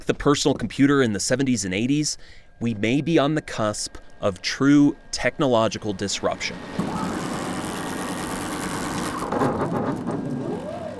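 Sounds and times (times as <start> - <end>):
speech: 0.1 - 6.9
motor whine: 3.9 - 10.9
large prototype 3D construction printer gantry moving back and forth in a garage: 6.2 - 10.9.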